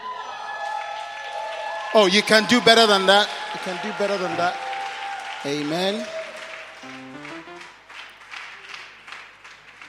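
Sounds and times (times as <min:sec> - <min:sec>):
crowd applauding at an evening faith testimony gathering: 0:00.2 - 0:09.8
speech: 0:01.9 - 0:04.7, 0:05.4 - 0:06.2
sustained musical tones: 0:06.8 - 0:07.7.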